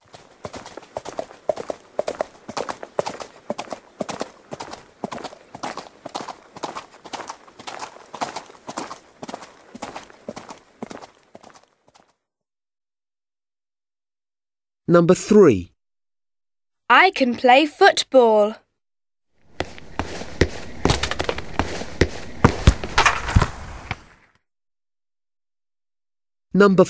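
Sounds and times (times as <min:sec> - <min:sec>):
horse hooves clip-clopping at a walk: 0:00.0 - 0:12.1, 0:19.5 - 0:24.1
speech: 0:14.9 - 0:15.7, 0:16.9 - 0:18.6, 0:26.6 - 0:26.8.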